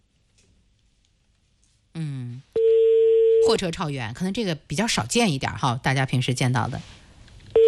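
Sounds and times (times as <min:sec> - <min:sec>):
short buzzy harmonic-rich phone line tone: 0:02.6 - 0:03.4
speech: 0:03.5 - 0:07.0.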